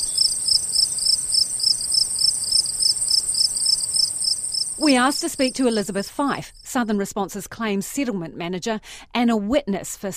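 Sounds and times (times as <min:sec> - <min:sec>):
crickets chirping: 0:00.0 - 0:06.8
speech: 0:04.8 - 0:10.1.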